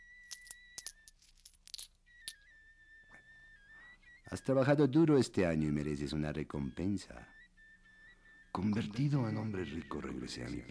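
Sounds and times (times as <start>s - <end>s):
coins and jewels clinking: 0.0s - 2.6s
speech: 4.3s - 7.4s, 8.6s - 10.6s.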